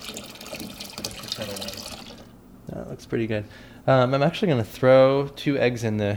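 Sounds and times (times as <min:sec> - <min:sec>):
hot water from a kettle pouring into cold water: 0:00.0 - 0:02.4
speech: 0:03.0 - 0:06.1.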